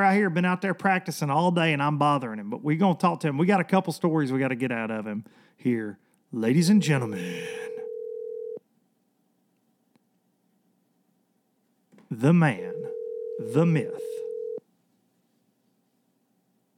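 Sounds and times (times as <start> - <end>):
speech: 0.0 - 7.6, 12.1 - 12.8, 13.4 - 14.2
low telephone ringing tone: 6.8 - 8.6, 12.6 - 14.6.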